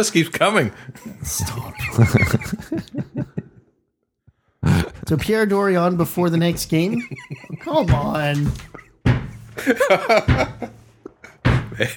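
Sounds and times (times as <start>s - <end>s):
speech: 0.0s - 3.4s, 5.1s - 8.8s, 9.6s - 10.8s, 11.8s - 11.9s
laughter: 0.6s - 3.8s, 6.0s - 11.9s
head banging against a table: 6.5s - 10.8s, 11.4s - 11.8s.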